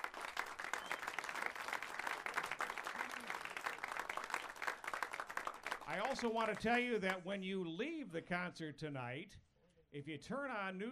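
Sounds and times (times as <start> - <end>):
audience applauding: 0.0 - 7.2
speech: 5.9 - 10.8.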